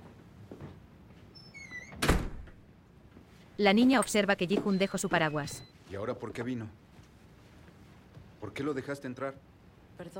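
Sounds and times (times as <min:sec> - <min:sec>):
door creaking open with squealing hinges: 0:01.4 - 0:02.6
solid wooden door thunk: 0:01.9 - 0:02.6
speech: 0:03.6 - 0:06.8, 0:08.4 - 0:10.1.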